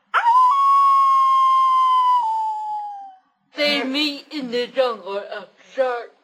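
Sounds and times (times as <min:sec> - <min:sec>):
werewolf howl: 0:00.2 - 0:03.2
speech: 0:03.8 - 0:06.1.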